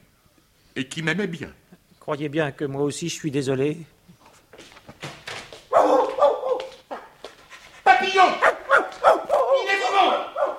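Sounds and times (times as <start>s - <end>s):
speech: 0.8s - 4.0s
dog barking: 5.7s - 7.1s, 7.9s - 10.5s
dog whimpering: 8.4s - 10.5s.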